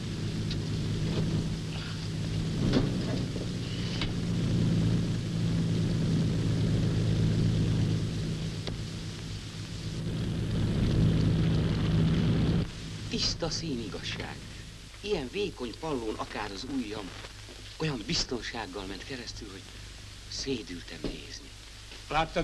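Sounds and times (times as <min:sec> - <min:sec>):
airplane from Budapest flying overhead: 0:00.0 - 0:13.1
speech: 0:13.2 - 0:22.4.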